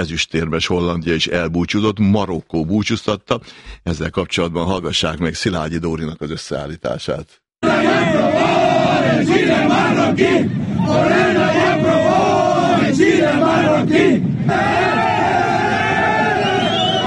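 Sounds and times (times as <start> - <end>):
speech: 0.0 - 12.3, 12.9 - 15.1
Moroccan football fans chanting and shouting celebrating a World Cup penalty shootout win: 7.6 - 17.0.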